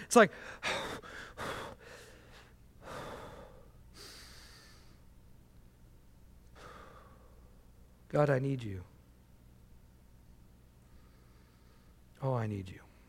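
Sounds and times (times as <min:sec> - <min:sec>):
slow deep breaths from a spiritual breathing practice: 0:00.0 - 0:05.0, 0:06.5 - 0:07.6, 0:10.8 - 0:12.1
speech: 0:00.1 - 0:00.8, 0:08.1 - 0:08.9, 0:12.2 - 0:12.8.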